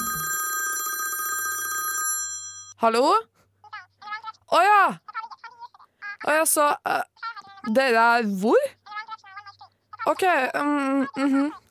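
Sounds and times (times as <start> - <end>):
telephone bell ringing with a metallic trill: 0.0 - 2.8
speech: 2.8 - 3.3, 4.5 - 5.0, 6.3 - 8.8, 10.1 - 11.6.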